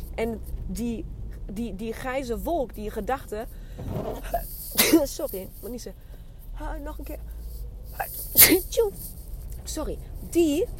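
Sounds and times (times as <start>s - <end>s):
speech: 0.2s - 7.4s, 8.0s - 10.7s
person sneezing: 4.8s - 5.1s, 8.3s - 8.7s.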